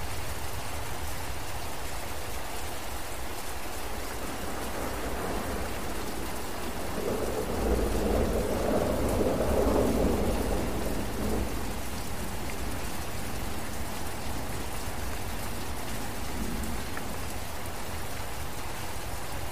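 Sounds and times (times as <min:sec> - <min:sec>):
steady rain falling in a forest: 0:00.0 - 0:19.5
deep rolling rumble of thunder: 0:03.8 - 0:18.6.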